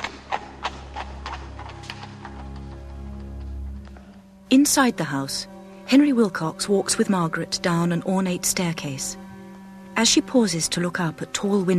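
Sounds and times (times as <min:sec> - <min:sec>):
carriage wheels rumbling on a London street: 0:00.0 - 0:02.7
hooves of a horse pulling a carriage clopping along a London street: 0:00.0 - 0:04.3
speech: 0:04.5 - 0:09.2, 0:10.0 - 0:11.7.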